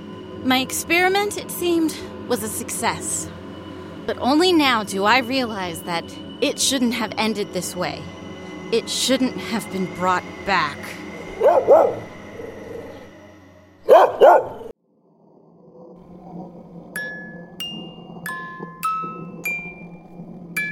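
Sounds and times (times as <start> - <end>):
speech: 0.4 - 3.4, 4.0 - 12.1
dog barking: 11.3 - 13.0, 13.8 - 14.7.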